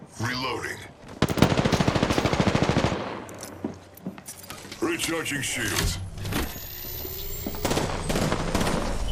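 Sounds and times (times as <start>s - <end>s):
speech: 0.2s - 0.9s, 4.9s - 6.0s
rapid automatic gunfire in a video game: 1.2s - 3.2s, 7.6s - 9.0s.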